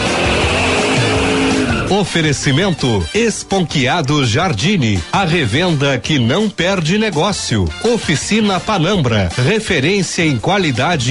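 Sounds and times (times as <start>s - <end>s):
racing car tires squealing: 0.0s - 2.6s
racing car engine roaring and whining: 0.0s - 2.8s
speech: 1.9s - 11.0s.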